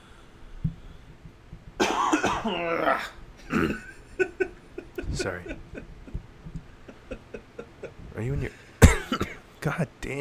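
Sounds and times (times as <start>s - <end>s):
person loudly clearing throat: 1.8s - 4.0s, 8.8s - 9.4s
speech: 2.4s - 3.9s, 5.2s - 5.9s, 8.2s - 8.6s, 9.6s - 10.1s
laughter: 2.5s - 8.6s.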